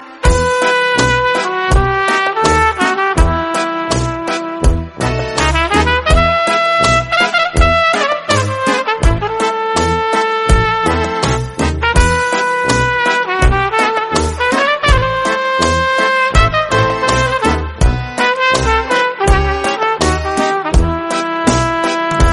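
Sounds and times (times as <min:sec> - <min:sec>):
Romanian trumpet ringtone: 0:00.0 - 0:22.3.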